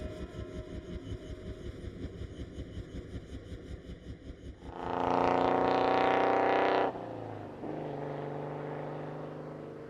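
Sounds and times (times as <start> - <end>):
new car engine idling and revving as the car pulls away: 0.7 - 9.8
car driving hum on a countryside drive: 4.6 - 9.8.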